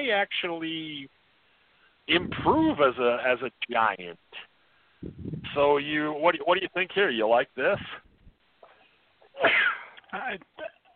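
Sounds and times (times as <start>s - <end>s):
speech: 0.0s - 1.2s, 2.1s - 8.0s, 9.4s - 10.8s
quiet breathy lead-in: 1.4s - 2.0s, 4.6s - 5.1s
short vocal sounds: 2.1s - 3.0s, 4.3s - 5.8s, 7.7s - 8.2s
loud sneeze: 9.4s - 10.0s.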